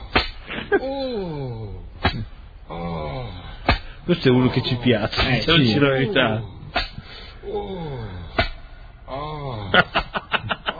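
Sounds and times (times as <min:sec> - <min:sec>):
man's low drawn-out moan: 0:00.0 - 0:03.6, 0:04.4 - 0:06.8, 0:07.4 - 0:08.4, 0:09.1 - 0:10.0
sharp whip lashes cracking: 0:00.1 - 0:00.4, 0:02.0 - 0:02.3, 0:06.8 - 0:07.0, 0:08.4 - 0:08.6
speech: 0:00.7 - 0:02.8, 0:04.1 - 0:06.6, 0:09.7 - 0:10.0
laughter: 0:09.7 - 0:10.7.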